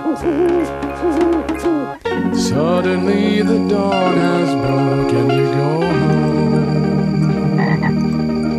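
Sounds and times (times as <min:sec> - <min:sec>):
owl hooting: 0:00.0 - 0:02.3
speech: 0:00.2 - 0:01.2, 0:02.4 - 0:06.1
steady low humming drone: 0:00.2 - 0:08.5.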